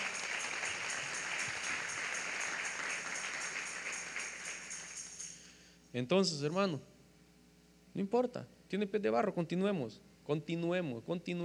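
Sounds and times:
audience clapping: 0:00.0 - 0:05.4
speech: 0:06.0 - 0:06.9, 0:08.0 - 0:11.4.

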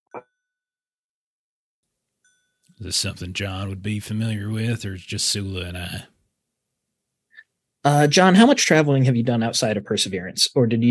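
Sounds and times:
bell ringing: 0:02.2 - 0:02.9
speech: 0:02.8 - 0:06.1, 0:07.8 - 0:10.8.

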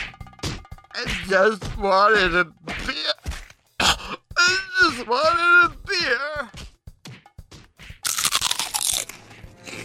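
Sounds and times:
speech: 0:01.0 - 0:03.2, 0:04.8 - 0:06.5
crispy black legume snacks being chewed: 0:08.0 - 0:09.8.

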